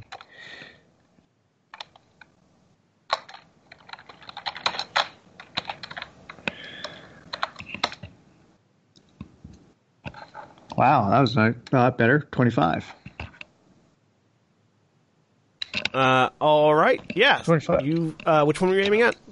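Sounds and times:
typing on a computer keyboard: 0.0 - 0.3, 1.7 - 2.3, 3.1 - 8.1
speech: 10.8 - 13.0, 16.0 - 19.2.

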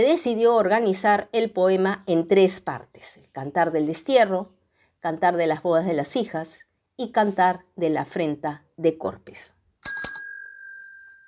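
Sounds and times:
speech: 0.0 - 9.6
doorbell ringing with bright metallic strikes: 9.8 - 11.2.

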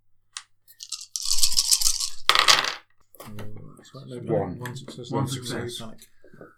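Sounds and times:
dice rattling across a hard surface: 0.7 - 2.8
person talking: 3.2 - 6.5.

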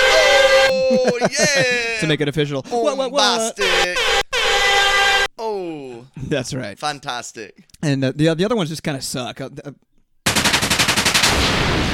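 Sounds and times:
laughter: 0.0 - 2.9
speech: 1.2 - 4.7, 5.4 - 9.9
machine gun fire sound effect: 10.3 - 11.9.

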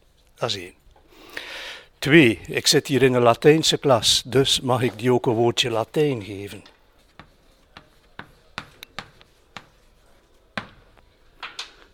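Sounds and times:
speech: 0.4 - 0.8, 2.0 - 6.7
chalk tapping and scratching on a classroom board: 7.0 - 10.8.

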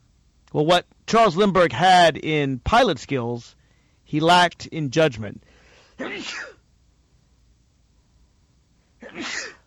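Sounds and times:
speech: 0.5 - 6.6, 9.0 - 9.6
sneezes: 6.0 - 6.6, 9.0 - 9.6.

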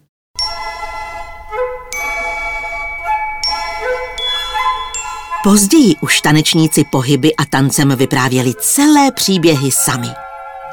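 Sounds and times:
bright bell-like metallic chimes in opera music: 0.4 - 9.7
speech: 5.4 - 10.7.

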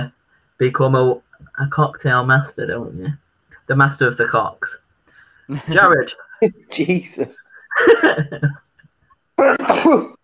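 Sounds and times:
speech: 0.0 - 4.8, 5.5 - 8.6, 9.4 - 10.2
laughter: 5.5 - 8.6
loud sneeze with sputtering follow-up sounds: 9.4 - 10.2.

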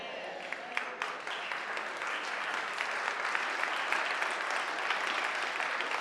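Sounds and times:
audience clapping: 0.0 - 5.9.

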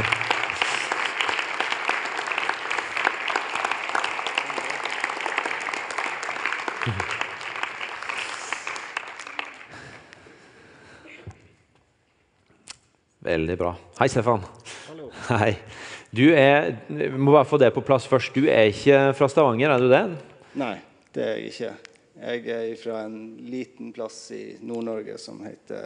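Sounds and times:
audience applause: 0.0 - 10.0
laughter: 6.8 - 7.3
speech: 13.3 - 14.6, 15.3 - 25.8.

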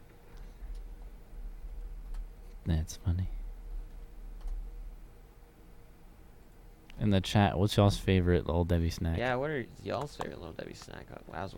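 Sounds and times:
speech: 2.7 - 3.4, 7.0 - 11.5
computer mouse clicking: 4.4 - 4.6.

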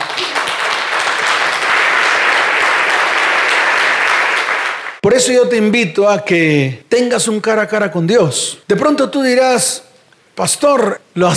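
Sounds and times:
crowd applauding: 0.0 - 5.0
speech: 5.2 - 11.3.

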